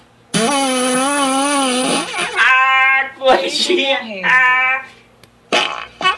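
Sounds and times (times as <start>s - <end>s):
strained forced fart sound effect: 0.3s - 2.6s, 5.5s - 6.1s
speech: 3.3s - 4.5s.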